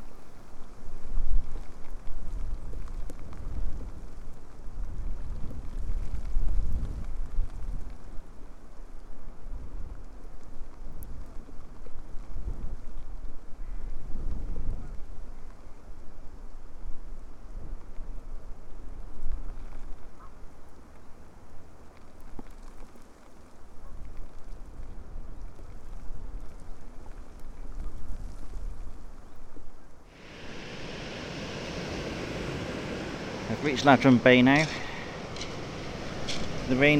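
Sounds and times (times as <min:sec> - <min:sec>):
strong wind gusts buffeting the microphone at a coastal estuary nature reserve: 0:00.0 - 0:22.5, 0:23.8 - 0:36.9
heavy rain at a coastal nature reserve on an estuary: 0:30.1 - 0:36.9
speech: 0:33.6 - 0:34.8, 0:36.7 - 0:36.9.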